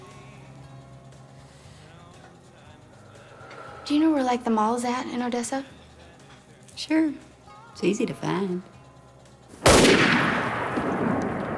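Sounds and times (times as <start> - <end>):
speech: 3.9 - 5.8, 6.8 - 8.7
rifle shot with long rumbling decay: 9.6 - 11.5.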